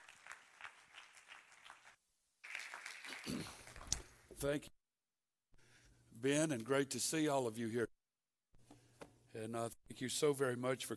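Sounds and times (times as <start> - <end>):
audience applauding: 0.0 - 4.3
speech: 4.4 - 4.8, 6.2 - 8.0, 9.4 - 10.9.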